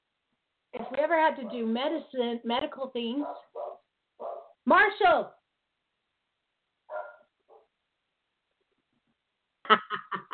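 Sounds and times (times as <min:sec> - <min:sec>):
speech: 0:00.7 - 0:03.6, 0:04.7 - 0:05.4
puppy barking: 0:03.2 - 0:04.6, 0:06.9 - 0:07.7.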